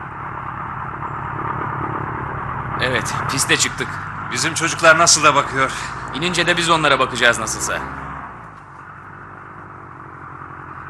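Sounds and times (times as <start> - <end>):
old aircraft engine throttled up while taxiing onto the runway: 0.0 - 7.6
speech: 2.8 - 8.0.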